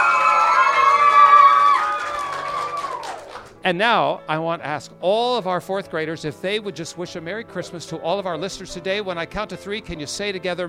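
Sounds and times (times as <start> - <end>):
group of children cheering and shouting: 0.0 - 3.2
speech: 3.6 - 10.6.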